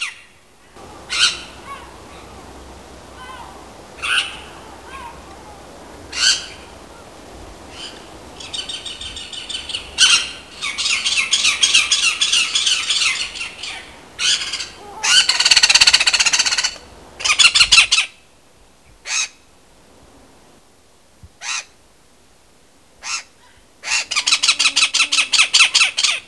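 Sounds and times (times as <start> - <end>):
great spotted cuckoo calls: 0.0 - 2.5, 3.1 - 18.2, 23.0 - 26.2.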